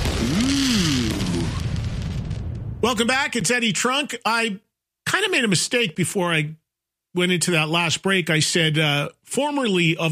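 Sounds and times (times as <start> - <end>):
pyrotechnic burst roar: 0.0 - 3.0
speech: 2.8 - 10.0.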